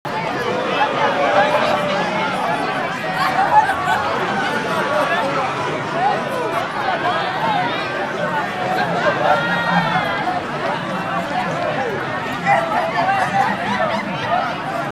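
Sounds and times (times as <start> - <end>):
people in fair ambience: 0.0 - 14.9
people laughing at a fair: 0.1 - 14.9.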